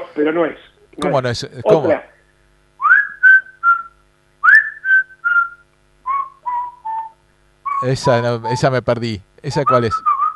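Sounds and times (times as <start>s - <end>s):
speech: 0.2s - 2.2s, 7.8s - 10.1s
person whistling a short tune: 2.8s - 7.9s, 9.9s - 10.3s.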